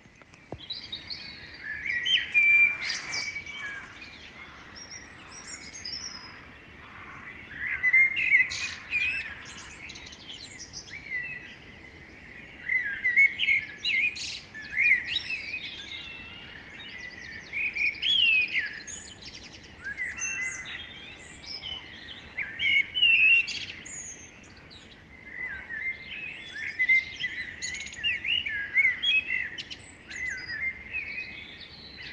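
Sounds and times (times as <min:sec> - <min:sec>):
dawn chorus birdsong: 0:00.0 - 0:32.1.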